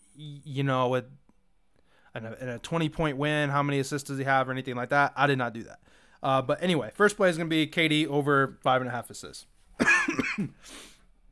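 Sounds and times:
speech: 0:00.2 - 0:01.2, 0:02.1 - 0:10.9
single harsh cough: 0:09.8 - 0:10.7
breathy raspy exhale: 0:10.6 - 0:11.1.

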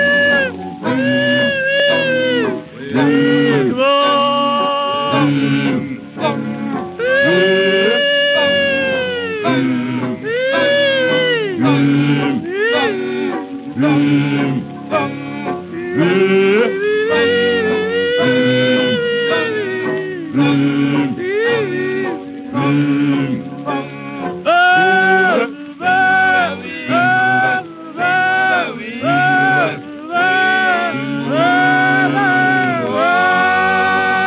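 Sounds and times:
old 1939 lo-fi music recording: 0:00.0 - 0:34.2.

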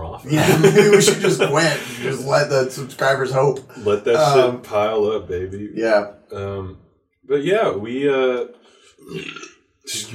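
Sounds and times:
laughter: 0:00.2 - 0:06.6
speech: 0:00.2 - 0:10.1
long loud burp: 0:09.0 - 0:09.6.

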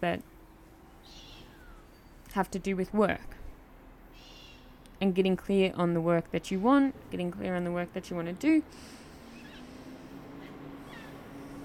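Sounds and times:
speech: 0:00.0 - 0:00.3, 0:02.3 - 0:03.4, 0:05.0 - 0:09.0
low hum: 0:00.0 - 0:11.6
cat meowing outside: 0:10.4 - 0:11.3.

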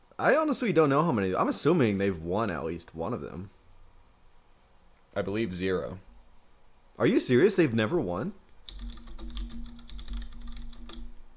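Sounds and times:
faint low electrical hum: 0:00.0 - 0:11.3
speech: 0:00.2 - 0:03.6, 0:05.2 - 0:06.1, 0:07.0 - 0:09.4
computer keyboard typing during a Google search: 0:08.6 - 0:11.2.

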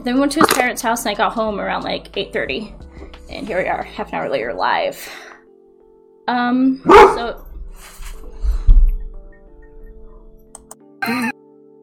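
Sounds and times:
speech: 0:00.0 - 0:05.3, 0:06.3 - 0:07.9, 0:11.1 - 0:11.3
pet dog barking: 0:06.9 - 0:07.4.

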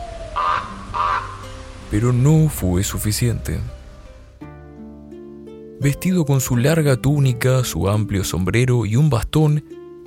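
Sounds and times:
ravens cawing harshly: 0:00.0 - 0:01.6
speech: 0:01.9 - 0:03.8, 0:05.8 - 0:10.0.

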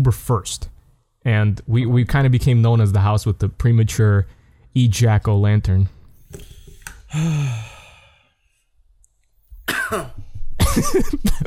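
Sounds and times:
speech: 0:00.1 - 0:06.5, 0:07.1 - 0:07.7, 0:09.9 - 0:10.2, 0:10.8 - 0:11.4
breathy rustles and sighs: 0:06.2 - 0:08.7
audience member coughing in a quiet room: 0:09.6 - 0:11.4.

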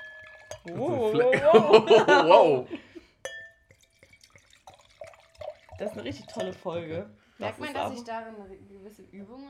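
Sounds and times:
drink poured from a bottle into a glass: 0:00.0 - 0:00.8, 0:03.4 - 0:07.0
ringing clink of a glass: 0:00.0 - 0:01.4, 0:03.2 - 0:08.0
speech: 0:00.5 - 0:02.8, 0:05.8 - 0:09.4
laughter: 0:00.7 - 0:02.9.

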